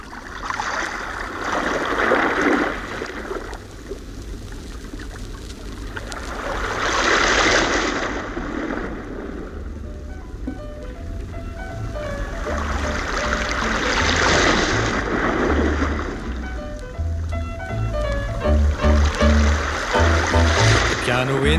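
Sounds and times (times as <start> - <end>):
ocean surf rolling in at a beach: 0.0 - 3.6, 5.7 - 21.5
faint melodic tones: 9.6 - 21.5.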